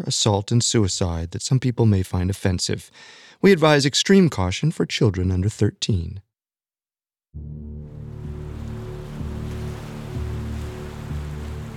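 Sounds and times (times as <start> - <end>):
speech: 0.0 - 6.3, 7.4 - 7.7
low constant rumble: 7.6 - 11.7
ocean waves lapping against the shore: 7.6 - 11.7.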